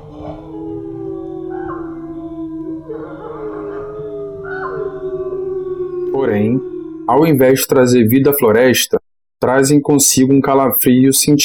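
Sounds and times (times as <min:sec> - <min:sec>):
several wolves howling together: 0:00.0 - 0:08.0
speech: 0:06.2 - 0:11.4.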